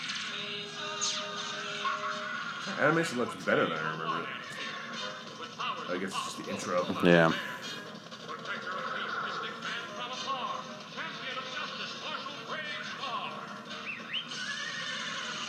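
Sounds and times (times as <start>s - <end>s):
loud cartoon intro music and sound effects: 0.0s - 15.4s
speech: 2.8s - 4.6s, 5.9s - 7.6s
horse whinnying in an animated cartoon intro: 14.3s - 15.4s.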